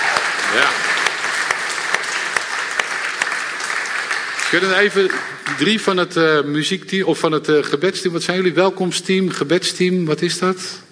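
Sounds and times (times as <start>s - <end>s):
crowd applauding: 0.0s - 6.1s
speech: 0.5s - 0.9s, 4.5s - 10.8s.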